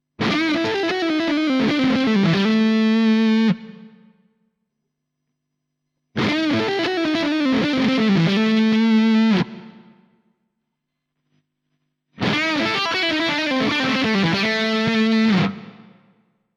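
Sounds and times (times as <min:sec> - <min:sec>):
lead electric guitar through split humbucker pickup: 0:00.2 - 0:04.1, 0:06.2 - 0:10.1, 0:12.2 - 0:16.2.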